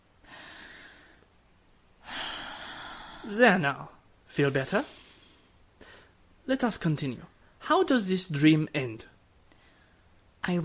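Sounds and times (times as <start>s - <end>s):
deep breathing: 0.2s - 1.3s, 2.0s - 3.4s, 4.8s - 6.2s
speech: 3.2s - 5.0s, 6.5s - 9.1s, 10.4s - 10.6s.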